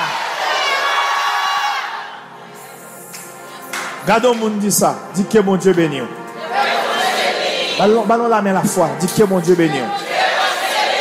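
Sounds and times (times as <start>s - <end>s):
large group of voices shouting hallelujah and cheering: 0.0s - 2.7s, 6.2s - 8.1s, 9.2s - 10.9s
speech: 4.1s - 6.2s, 7.8s - 10.0s.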